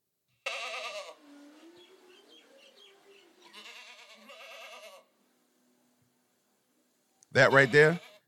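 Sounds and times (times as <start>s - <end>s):
goat bleating: 0.4s - 1.2s, 3.4s - 5.1s, 7.4s - 8.2s
speech: 7.4s - 8.1s.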